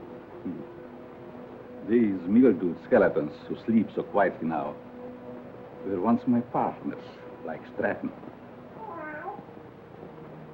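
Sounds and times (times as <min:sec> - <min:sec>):
steady low hiss: 0:00.0 - 0:10.5
speech: 0:01.9 - 0:04.8, 0:05.8 - 0:08.4
cat meowing in a graveyard: 0:08.8 - 0:09.5.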